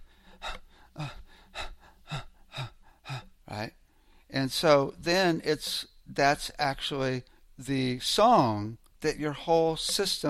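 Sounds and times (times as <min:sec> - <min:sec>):
voice imitating rushed, stressed breathing with quick gasping breaths: 0:00.0 - 0:04.3
speech: 0:04.4 - 0:10.2.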